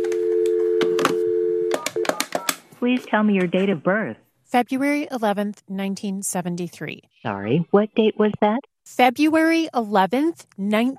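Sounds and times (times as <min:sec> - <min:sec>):
telephone line tone humming during a call to a health insurance company: 0:00.0 - 0:02.2
speech: 0:02.8 - 0:10.9.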